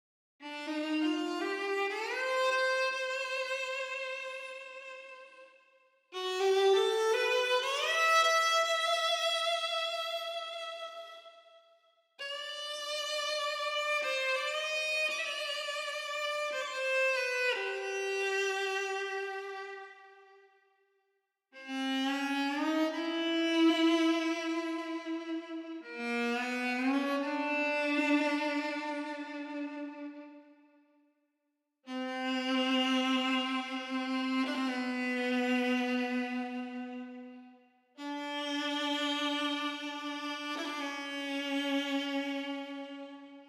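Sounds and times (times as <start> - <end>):
melancholy violin: 0.4 - 11.6, 12.2 - 20.5, 21.6 - 30.8, 31.9 - 43.4.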